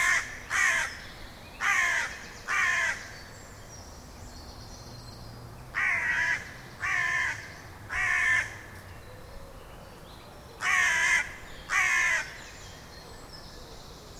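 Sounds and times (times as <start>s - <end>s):
Carrion crow cawing: 0.0s - 1.0s, 1.6s - 3.1s, 5.8s - 8.7s, 10.6s - 12.4s.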